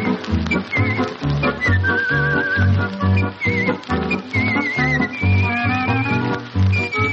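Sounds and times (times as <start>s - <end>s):
artistic whistling of a melody with vibrato and sliding notes: 0.0s - 7.1s
rhythmic instrumental accompaniment with a bouncing bass line: 0.0s - 7.1s.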